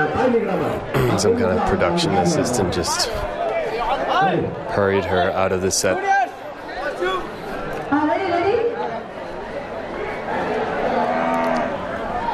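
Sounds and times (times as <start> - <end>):
people chattering: 0.0 - 12.3
speech: 0.3 - 6.2
cow mooing: 11.0 - 11.8.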